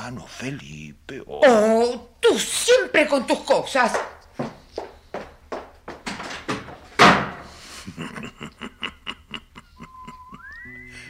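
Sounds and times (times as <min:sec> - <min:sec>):
speech: 0:00.1 - 0:04.2
quick thumping steps: 0:03.9 - 0:07.5
door slamming shut: 0:06.0 - 0:07.4
laughter: 0:07.6 - 0:10.6.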